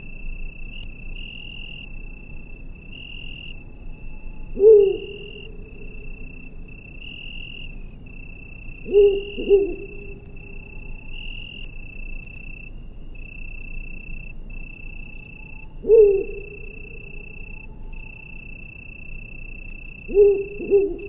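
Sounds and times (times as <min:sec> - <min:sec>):
insect trilling: 0:00.0 - 0:21.0
bird hooting: 0:04.5 - 0:06.1, 0:08.8 - 0:10.2, 0:15.8 - 0:17.5, 0:20.0 - 0:21.0.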